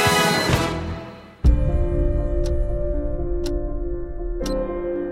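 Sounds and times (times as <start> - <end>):
dense music: 0.1 - 5.1
clock ticking: 2.3 - 2.8, 3.4 - 3.8, 4.4 - 4.7.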